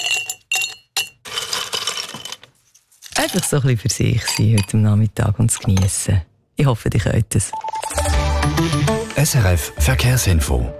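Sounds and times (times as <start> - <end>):
ice cubes clinking in a glass of Campari soda: 0.0 - 2.5, 3.1 - 4.8
speech: 3.2 - 7.6, 8.4 - 10.7.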